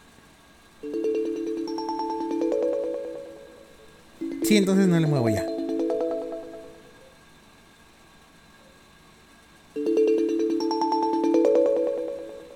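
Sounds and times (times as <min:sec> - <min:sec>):
smart speaker electronic alarm chime: 0:00.8 - 0:07.0, 0:09.8 - 0:12.5
speech: 0:04.5 - 0:05.5.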